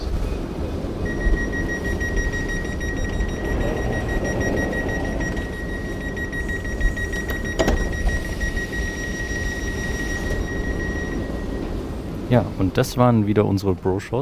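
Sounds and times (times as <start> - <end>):
train pulling away from a station rumbling: 0.0 - 14.2
sustained high whining tone of departing train: 1.0 - 12.2
speech: 12.3 - 14.2.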